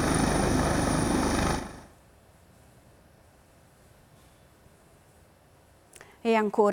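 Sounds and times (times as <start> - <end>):
Coast Guard helicopter rotor chopping while hovering over water: 0.0 - 2.0
speech: 6.2 - 6.7.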